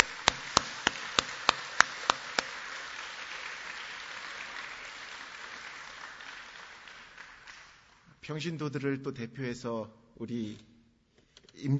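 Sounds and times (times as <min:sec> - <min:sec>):
church audience applauding: 0:00.0 - 0:08.1
speech: 0:08.3 - 0:10.7, 0:11.6 - 0:11.7.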